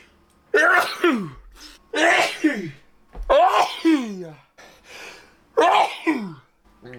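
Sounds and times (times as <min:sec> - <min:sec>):
loud sharp sneezes with a voiced tail: 0:00.5 - 0:04.3, 0:05.6 - 0:06.4.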